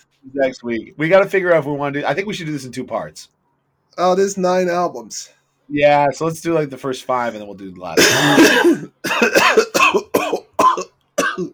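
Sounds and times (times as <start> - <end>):
speech: 0.2 - 3.4, 4.0 - 10.3
person coughing harshly: 8.0 - 11.5.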